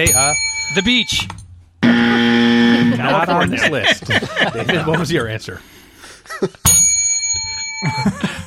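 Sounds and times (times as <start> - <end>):
bright metallic bell ringing: 0.0 - 3.8, 6.6 - 8.4
speech: 0.0 - 6.8, 7.8 - 8.4
laughter: 2.0 - 5.4, 6.1 - 6.7, 7.8 - 8.4.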